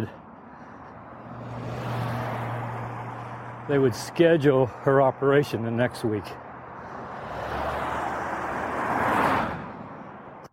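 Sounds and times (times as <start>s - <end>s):
car passing by on a road: 0.8s - 3.8s, 6.6s - 10.3s
speech: 3.7s - 6.4s.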